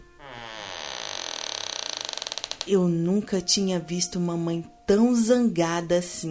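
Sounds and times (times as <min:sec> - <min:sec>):
door creaking open: 0:00.0 - 0:02.8
speech: 0:02.6 - 0:06.3.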